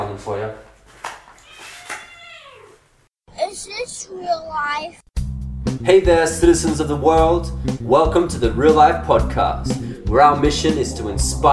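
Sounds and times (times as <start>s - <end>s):
cat meowing in a wavering falling cry: 1.4s - 2.8s
speech: 4.1s - 5.0s, 5.7s - 11.5s.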